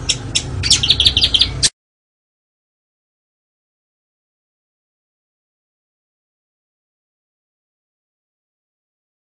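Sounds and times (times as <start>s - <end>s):
Oriental magpie-robin song: 0.0s - 1.7s
low background hum: 0.0s - 1.7s.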